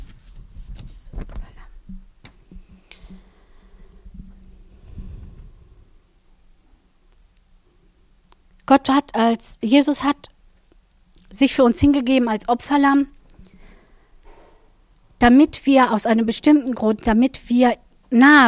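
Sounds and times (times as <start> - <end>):
book pages being leafed through: 0.0 - 1.7
speech: 8.7 - 10.2, 11.4 - 13.2, 15.2 - 18.4.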